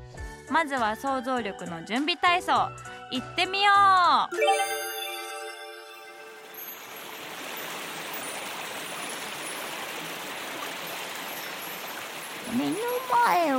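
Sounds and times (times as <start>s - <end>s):
speech: 0.5s - 4.8s, 12.6s - 13.5s
flowing stream water: 4.4s - 13.5s.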